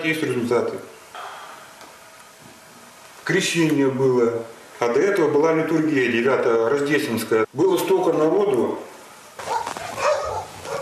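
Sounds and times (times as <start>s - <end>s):
speech: 0.0s - 1.0s, 3.2s - 8.9s
hiss: 0.0s - 10.7s
dogs barking and yipping: 9.4s - 10.7s.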